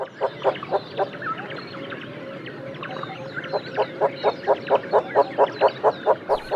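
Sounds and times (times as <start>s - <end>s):
Von der Decken's hornbill calling with hollow clucking notes: 3.8s - 6.5s.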